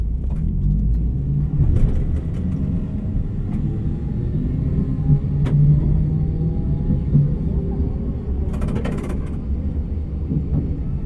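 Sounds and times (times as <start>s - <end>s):
bus pulling away from a stop and driving: 0.0s - 11.0s.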